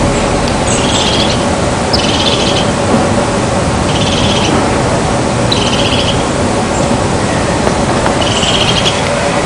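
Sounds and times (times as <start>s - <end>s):
steady background noise: 0.0s - 9.4s
crested tit Lophophanes cristatus calling with buzzy high trills: 0.7s - 2.8s, 3.9s - 4.6s, 5.5s - 6.9s, 8.1s - 9.0s.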